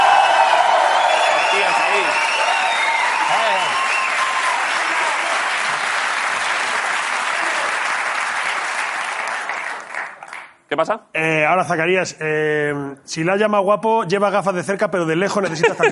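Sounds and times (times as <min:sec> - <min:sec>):
audience cheers and whoops: 0:00.0 - 0:05.6
studio audience applause: 0:00.0 - 0:10.5
speech: 0:10.8 - 0:15.9.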